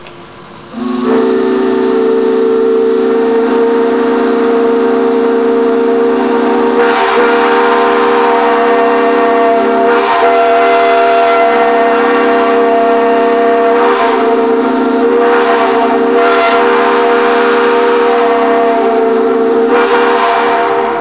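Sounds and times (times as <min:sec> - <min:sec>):
six-chime and three-chime steam whistles: 0:00.6 - 0:20.9.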